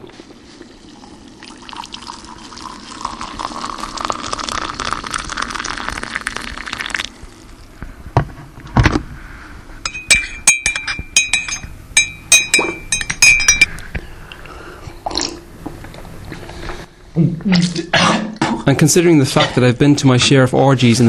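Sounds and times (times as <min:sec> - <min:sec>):
tea pouring into a cup: 0:00.0 - 0:07.7
spoon clinking against the side of a cup while stirring tea: 0:09.9 - 0:13.7
speech: 0:17.2 - 0:17.9, 0:18.8 - 0:21.0.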